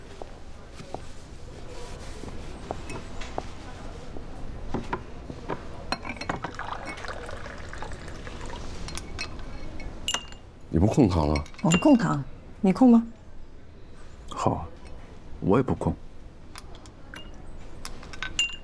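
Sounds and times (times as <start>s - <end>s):
light clinks of glass or ceramic: 5.9s - 10.4s, 11.2s - 12.1s, 17.1s - 17.4s, 18.1s - 18.6s
coffee pouring into a cup in a law office: 6.1s - 9.3s
speech: 10.8s - 13.2s, 14.4s - 14.7s, 15.4s - 16.0s.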